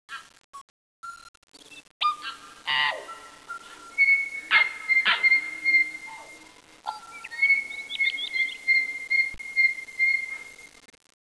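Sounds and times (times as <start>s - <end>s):
tui: 2.0s - 10.5s.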